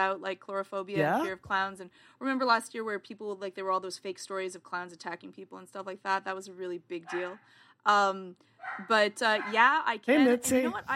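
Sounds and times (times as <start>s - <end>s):
speech: 0.0s - 10.9s
dog barking: 7.1s - 7.4s, 8.6s - 9.6s.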